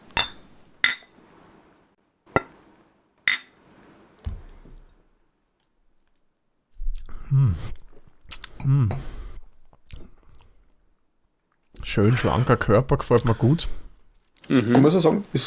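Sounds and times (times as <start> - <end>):
glasses clinking in a toast: 0.0 - 1.2, 3.3 - 3.6
speech: 7.3 - 7.8, 8.6 - 9.2, 12.0 - 13.8, 14.5 - 15.4.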